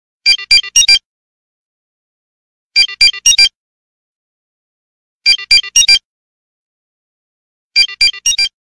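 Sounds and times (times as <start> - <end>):
Android beep ringtone: 0.3 - 1.0, 2.8 - 3.6, 5.3 - 6.0, 7.8 - 8.6.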